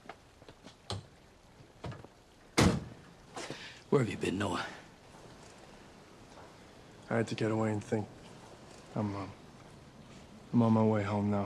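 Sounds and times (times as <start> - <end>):
car door slamming shut: 2.6 - 2.9
speech: 3.9 - 4.8, 7.1 - 8.2, 9.0 - 9.4, 10.5 - 11.4.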